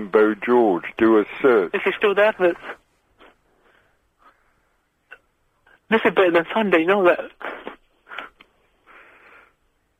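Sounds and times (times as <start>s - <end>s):
speech: 0.0s - 2.8s, 5.9s - 7.6s
breathing into a microphone: 2.6s - 4.9s, 7.4s - 9.6s.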